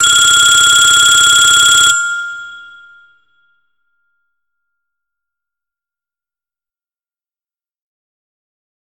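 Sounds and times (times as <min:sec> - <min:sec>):
MIDI tone ringtone of a Kyocera Cadence LTE phone: 0:00.0 - 0:03.2.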